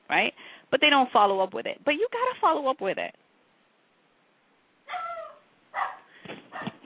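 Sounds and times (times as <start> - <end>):
speech: 0.1 - 3.2
dog barking: 4.9 - 6.8.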